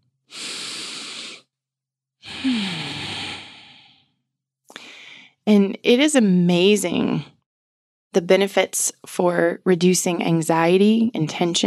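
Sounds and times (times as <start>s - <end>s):
deep breath taken slowly: 0.3s - 1.5s, 2.2s - 5.4s
speech: 5.5s - 7.3s, 8.2s - 11.6s.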